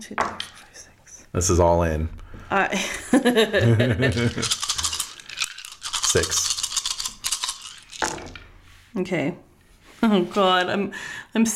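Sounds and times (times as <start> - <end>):
speech: 0.0 - 0.6, 1.3 - 4.6, 6.1 - 6.5, 9.0 - 11.5
four dice clattering and tumbling across a hard surface: 4.1 - 8.5.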